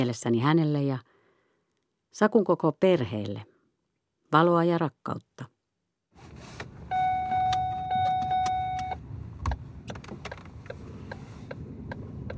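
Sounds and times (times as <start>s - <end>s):
speech: 0.0s - 1.1s, 2.1s - 3.5s, 4.3s - 5.6s
low car engine rumble inside the cabin: 6.2s - 12.3s
sharp clicks and ticks: 9.4s - 12.3s.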